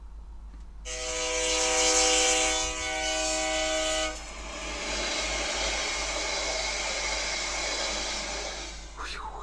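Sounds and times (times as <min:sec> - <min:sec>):
train horn sounding a sustained harmonic blast: 0:00.9 - 0:04.8
train rumbling along the rails: 0:00.9 - 0:09.4.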